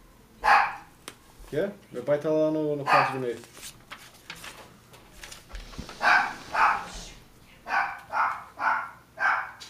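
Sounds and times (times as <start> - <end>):
dogs barking: 0.4 - 0.9, 2.8 - 3.2, 6.0 - 9.6
speech: 1.5 - 3.8.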